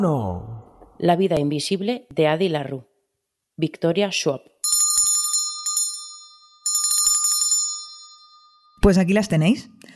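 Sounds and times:
speech: 0.0 - 2.9, 3.6 - 4.5, 8.8 - 9.9
bright metallic bell ringing in trilling bursts: 4.6 - 8.8.

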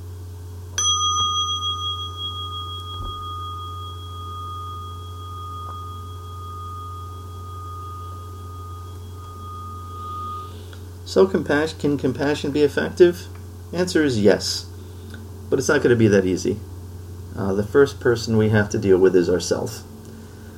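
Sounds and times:
low steady hum: 0.0 - 20.5
mindfulness bell struck and ringing: 0.8 - 10.8
speech: 11.1 - 14.7, 15.5 - 16.7, 17.4 - 19.9.

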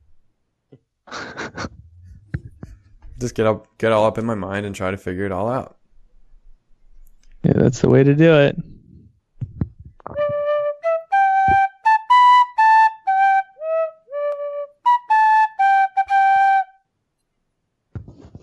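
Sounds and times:
low thumps: 1.6 - 4.3, 7.7 - 10.6
speech: 3.2 - 5.8, 7.6 - 8.7
tin whistle melody: 10.2 - 16.8.

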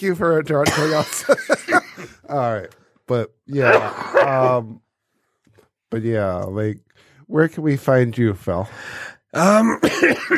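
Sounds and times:
speech: 0.0 - 4.8, 5.9 - 10.3
person coughing with a rasping hack: 0.6 - 2.1, 3.7 - 4.5, 9.6 - 10.3.

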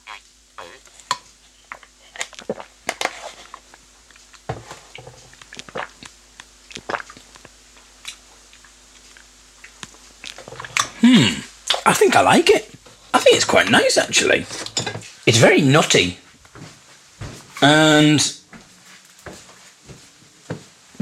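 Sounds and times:
slurping and gulping cashew milk from a carton: 0.0 - 11.9
mouth clicks and smacks: 5.4 - 11.0
speech: 11.2 - 12.7, 13.3 - 14.6, 15.2 - 16.2, 17.6 - 18.4.

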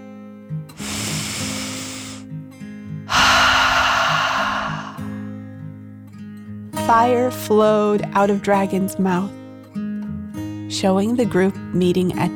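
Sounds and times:
deep breath in and out: 0.8 - 2.2, 3.1 - 5.2
speech: 6.9 - 9.4, 10.8 - 12.3.

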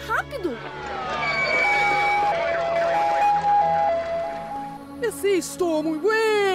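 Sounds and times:
speech: 0.3 - 1.0, 5.3 - 6.4
loud two-tone ambulance siren: 0.6 - 5.0.

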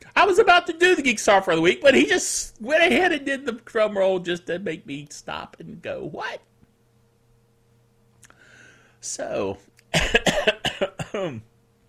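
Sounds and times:
speech: 0.2 - 6.5, 9.0 - 11.5
person coughing harshly: 9.9 - 11.5.

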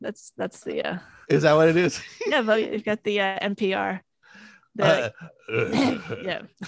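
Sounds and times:
speech: 0.0 - 4.1, 4.8 - 6.6
gravelly throat clearing: 4.9 - 6.6.

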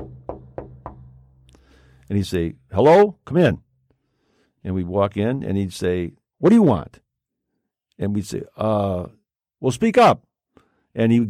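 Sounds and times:
firm knocking on a door: 0.0 - 1.5
speech: 2.1 - 3.6, 4.6 - 7.0, 8.0 - 10.3, 10.9 - 11.2.

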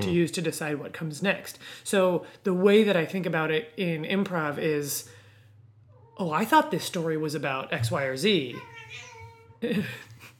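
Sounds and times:
speech: 0.0 - 5.2, 6.2 - 10.1
cat meowing: 8.5 - 9.6.

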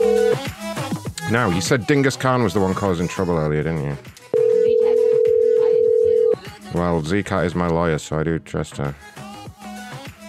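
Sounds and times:
telephone tone after a call drops: 0.0 - 0.5, 4.3 - 6.4
speech: 1.3 - 4.2, 6.7 - 9.2.

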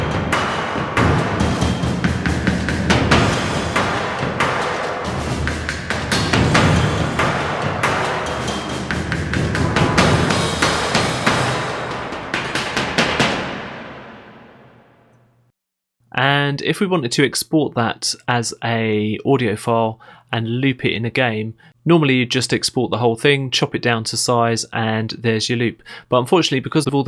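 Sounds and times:
acoustic trailer-style percussion with heavy drum thuds: 0.0 - 14.6
speech: 16.6 - 27.0.

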